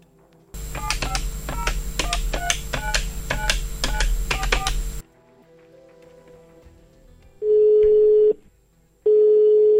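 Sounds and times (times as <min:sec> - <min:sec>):
long steady telephone ringing tones: 0:00.6 - 0:05.0, 0:07.4 - 0:08.4
low hum: 0:00.6 - 0:05.0
touch-tone keypad dialling a telephone call: 0:00.7 - 0:05.0.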